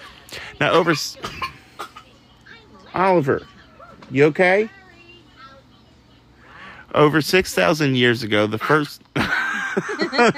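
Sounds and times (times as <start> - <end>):
speech: 0.3 - 1.5, 3.0 - 4.8, 6.9 - 10.3
boy coughing in forced bursts: 0.6 - 2.2
laughter: 9.2 - 10.3.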